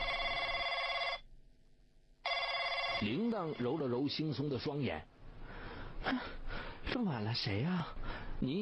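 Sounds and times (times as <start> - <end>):
telephone bell ringing at night: 0.0 - 1.2, 2.2 - 4.0
speech: 3.0 - 5.1, 6.0 - 6.4, 7.0 - 8.5.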